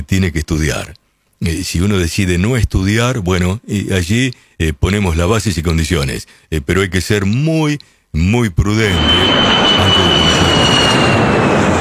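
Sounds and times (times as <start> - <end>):
speech: 0.1 - 11.0
Boeing airplane taking off: 8.8 - 11.7.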